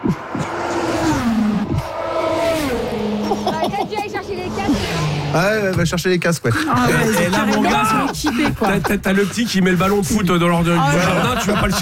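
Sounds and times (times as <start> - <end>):
car speeding past at 300 km/h: 0.0 - 5.7
laughter: 3.2 - 4.3, 6.5 - 11.7
speech: 5.3 - 11.7.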